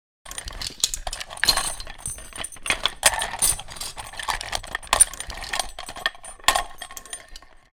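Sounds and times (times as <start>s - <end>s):
sniper rifle brass shell foley movement: 0.3s - 7.7s.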